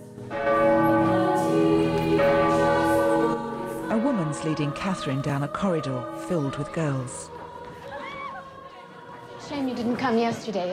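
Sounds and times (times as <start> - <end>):
church bell tolling in a tower: 0.0 - 7.4
speech: 4.4 - 7.4, 9.5 - 10.7.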